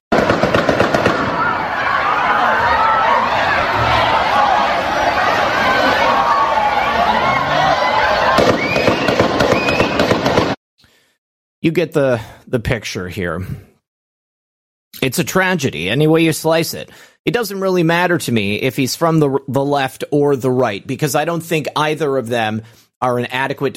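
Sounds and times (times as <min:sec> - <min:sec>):
gunshots in a video recorded during a shooting: 0:00.1 - 0:02.0, 0:08.3 - 0:10.6
crowd noise: 0:00.1 - 0:10.6
speech: 0:11.6 - 0:13.7, 0:15.0 - 0:23.7.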